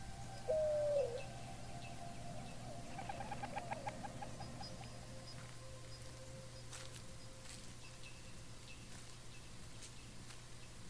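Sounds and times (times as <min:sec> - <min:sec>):
dove cooing: 0:00.0 - 0:05.3
low hum: 0:00.0 - 0:10.8.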